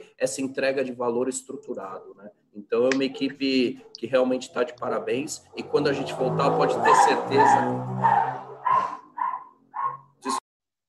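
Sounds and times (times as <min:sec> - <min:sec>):
speech: 0:00.2 - 0:08.4
dog barking: 0:06.9 - 0:10.2.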